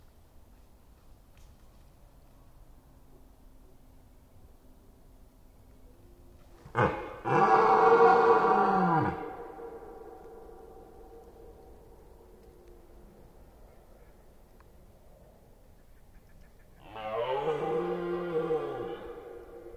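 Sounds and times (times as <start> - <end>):
red deer stag roaring during the rut in Forêt d'Orleans, France: 6.7 - 10.3, 16.8 - 19.6.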